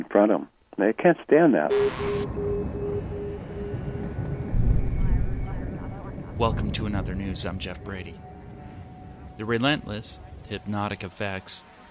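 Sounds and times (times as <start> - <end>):
speech: 0.0 - 2.8, 6.4 - 8.3, 9.4 - 11.8
helicopter hovering overhead: 1.7 - 10.7.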